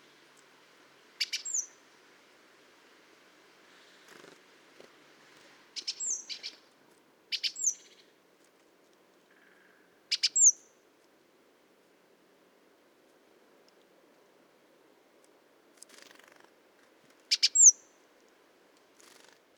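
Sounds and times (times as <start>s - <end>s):
soft low background hiss: 0.0s - 19.5s
great tit Parus major calling: 1.2s - 1.8s, 5.8s - 6.6s.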